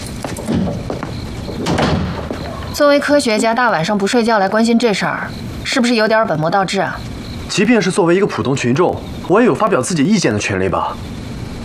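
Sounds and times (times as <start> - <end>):
door closing: 0.0 - 3.0
steady hum: 0.0 - 11.6
speech: 2.8 - 11.2.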